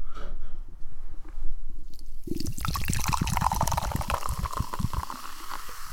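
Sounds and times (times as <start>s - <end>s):
tropical lime drink pouring into a glass with a bubbly fizzing gurgle: 2.2s - 5.9s.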